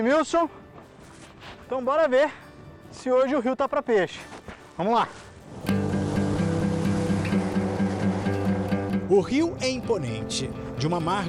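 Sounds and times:
speech: 0.0 - 0.6, 1.4 - 5.2, 9.1 - 11.2
rushing water: 5.3 - 11.2
motorboat engine droning: 5.7 - 10.7.

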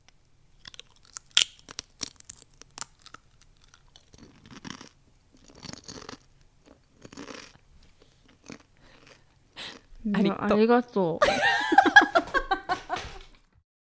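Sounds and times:
person eating potato chips: 0.0 - 10.2
speech: 10.1 - 11.5
laughter: 11.2 - 13.3.

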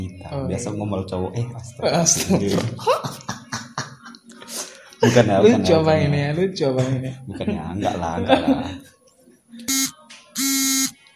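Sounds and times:
speech: 0.3 - 3.4, 5.0 - 8.9
laughter: 2.1 - 5.4, 8.3 - 8.8
wake-up alarm buzzing loudly before dawn for dawn prayer: 9.6 - 11.0.

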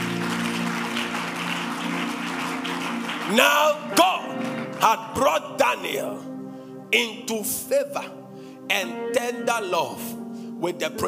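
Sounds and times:
audience clapping: 0.0 - 5.3
speech: 3.3 - 4.1, 4.8 - 6.3, 6.9 - 11.0.

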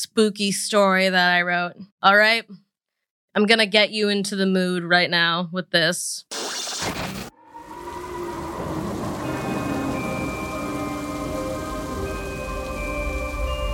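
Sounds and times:
speech: 0.0 - 2.6, 3.4 - 7.1
heavy rain pouring: 6.4 - 13.7
faint sustained tones: 7.3 - 13.7
low thunder rumbling: 7.3 - 13.7.

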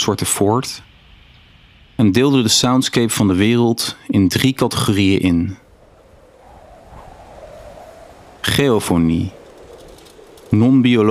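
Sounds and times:
speech: 0.0 - 0.9, 2.0 - 5.6, 8.4 - 9.4, 10.5 - 11.0
flowing water or wind rushing: 4.8 - 11.0.

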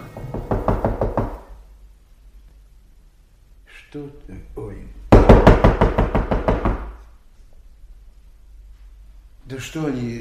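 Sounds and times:
firm knocking on a wooden door: 0.2 - 1.5, 5.1 - 7.0
speech: 3.9 - 5.0, 9.5 - 10.2.

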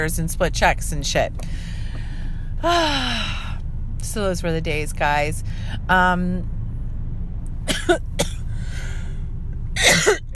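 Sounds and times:
speech: 0.0 - 1.8, 2.6 - 3.4, 4.0 - 6.5, 7.9 - 8.1
steady low rumble: 0.0 - 10.3
harsh coughing: 7.7 - 8.5, 9.8 - 10.3.

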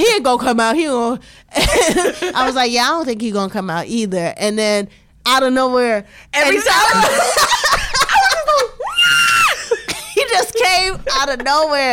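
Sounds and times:
speech: 0.0 - 7.7, 10.4 - 11.9
excited high-pitched screaming: 8.8 - 9.8.

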